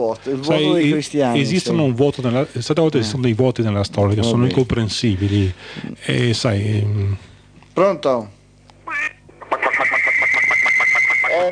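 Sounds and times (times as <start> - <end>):
speech: 0.0 - 8.4
duck quacking: 8.9 - 11.4.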